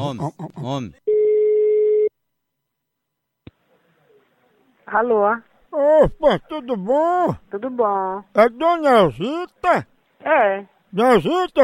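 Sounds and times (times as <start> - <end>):
speech: 0.0 - 1.0, 4.9 - 11.6
telephone call tone while a number is dialled: 1.1 - 2.1.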